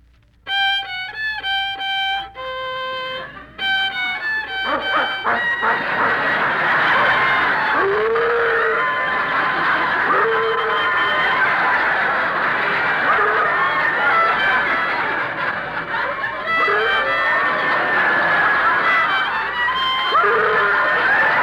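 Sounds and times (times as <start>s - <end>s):
noisy crowded background: 0.0s - 21.4s
violin playing bright notes: 0.4s - 21.4s
laughter: 3.0s - 21.4s
dog yipping and howling along with a violin: 7.7s - 9.2s, 9.9s - 11.1s, 13.0s - 13.8s, 20.0s - 21.4s.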